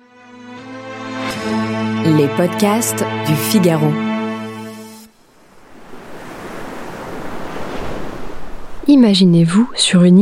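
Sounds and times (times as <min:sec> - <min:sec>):
brief sustained musical tone: 0:00.0 - 0:05.2
ocean waves washing onto the shore: 0:01.4 - 0:09.2
speech: 0:02.0 - 0:04.0, 0:08.9 - 0:10.1.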